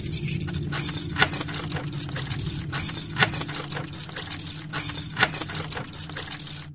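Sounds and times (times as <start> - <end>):
bunch of keys jangling: 0.0 - 6.7.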